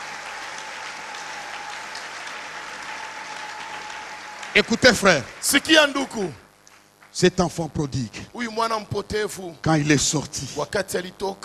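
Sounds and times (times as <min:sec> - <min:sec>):
church congregation applauding to acclaim the Lord: 0:00.0 - 0:07.4
speech: 0:04.6 - 0:06.4, 0:07.2 - 0:11.4.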